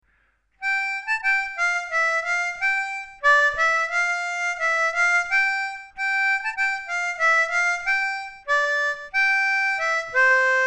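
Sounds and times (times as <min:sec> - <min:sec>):
junior harmonica melody: 0:00.6 - 0:10.6.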